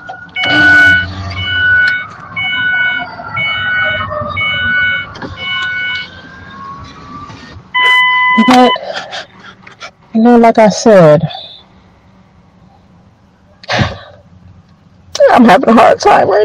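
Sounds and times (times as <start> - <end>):
electronic alarms with high piercing tones: 0.0 - 8.9
speech: 8.4 - 8.8, 10.2 - 11.4, 15.4 - 16.4.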